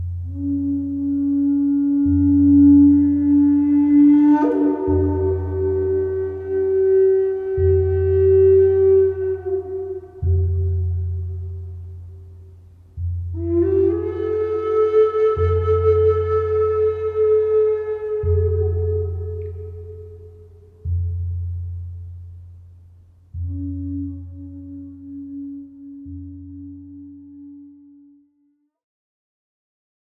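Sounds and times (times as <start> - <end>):
Indian flute: 0.2 - 21.7, 23.3 - 28.7.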